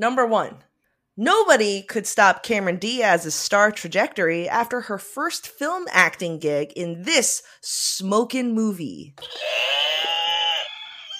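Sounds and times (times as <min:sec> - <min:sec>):
speech: 0:00.0 - 0:10.0
rooster crow sound effect used as a quiz buzzer: 0:09.2 - 0:11.1.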